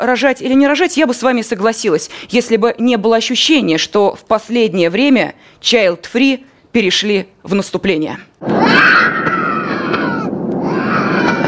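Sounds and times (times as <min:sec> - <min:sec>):
speech: 0:00.0 - 0:09.3
adult rock musician imitating a baby screaming on a plane: 0:08.6 - 0:11.4.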